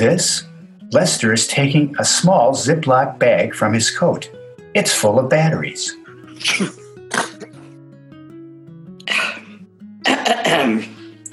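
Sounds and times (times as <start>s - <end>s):
speech: 0.0s - 6.8s, 10.5s - 10.9s
breathy sneezes into cupped hands: 6.3s - 7.6s, 10.1s - 10.9s.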